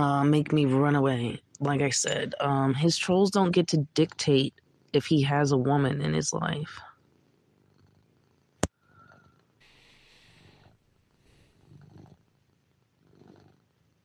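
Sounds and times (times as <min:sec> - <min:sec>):
speech: 0:00.0 - 0:06.9
cat purring: 0:05.9 - 0:14.0.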